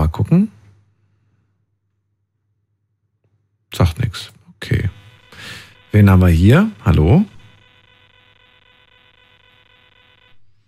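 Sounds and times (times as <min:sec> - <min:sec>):
speech: 0:00.2 - 0:00.6, 0:03.8 - 0:04.3, 0:06.0 - 0:07.3
shrill electronic beeping on a phone line: 0:04.6 - 0:10.6.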